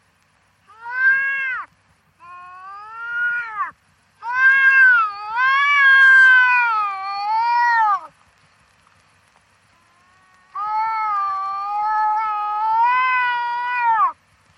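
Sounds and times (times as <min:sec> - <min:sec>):
wildcat yowling: 0:02.2 - 0:08.1, 0:09.8 - 0:14.2.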